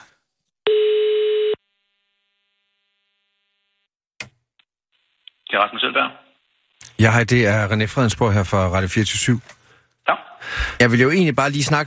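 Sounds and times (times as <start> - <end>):
buzzy telephone ringing tone while calling a school: 0.7 - 1.6
speech: 5.6 - 6.2, 7.0 - 11.8.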